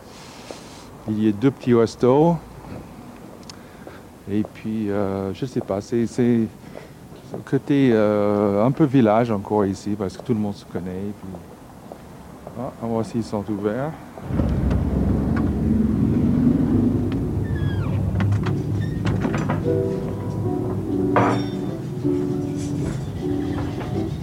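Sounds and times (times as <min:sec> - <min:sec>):
speech: 0:01.0 - 0:02.5, 0:04.3 - 0:06.6, 0:07.3 - 0:11.5, 0:12.6 - 0:14.5
steady low rumble: 0:14.2 - 0:22.6
soft bumps: 0:14.2 - 0:24.1
restaurant door clicking and thumping open: 0:17.1 - 0:19.9.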